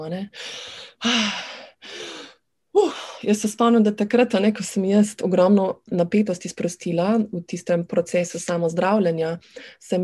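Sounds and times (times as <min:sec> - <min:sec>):
speech: 0:00.0 - 0:01.6, 0:02.8 - 0:10.0
person gasping for air in relief: 0:00.4 - 0:03.2.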